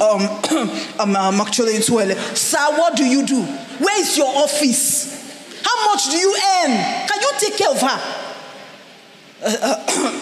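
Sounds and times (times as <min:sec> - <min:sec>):
speech: 0:00.0 - 0:05.1, 0:05.7 - 0:08.2, 0:09.4 - 0:10.2
person coughing raspily: 0:00.4 - 0:00.8, 0:09.5 - 0:10.2.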